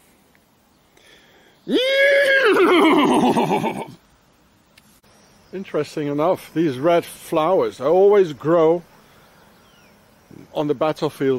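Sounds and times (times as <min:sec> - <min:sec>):
horse whinnying: 0:01.7 - 0:04.0
speech: 0:01.7 - 0:04.0, 0:05.5 - 0:08.9, 0:10.6 - 0:11.3.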